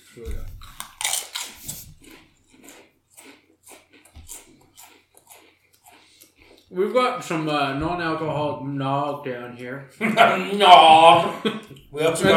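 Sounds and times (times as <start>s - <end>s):
chewing crunchy haunted ghost pepper chips: 0.0s - 7.0s
speech: 0.2s - 0.6s, 6.7s - 12.3s
laughter: 10.0s - 12.3s.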